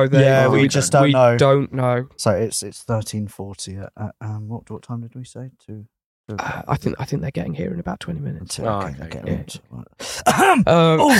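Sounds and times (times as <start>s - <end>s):
speech: 0.0s - 11.1s
person with COVID hacking coughs: 10.1s - 11.1s.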